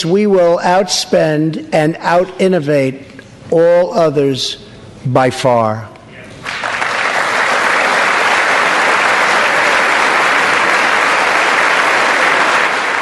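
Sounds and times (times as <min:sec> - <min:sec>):
speech: 0:00.0 - 0:06.6
large audience applauding: 0:06.4 - 0:13.0.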